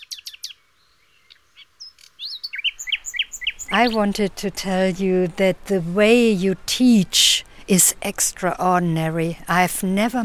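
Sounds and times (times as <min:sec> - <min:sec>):
small birds chirping and singing: 0:00.0 - 0:05.2
speech: 0:03.7 - 0:10.2.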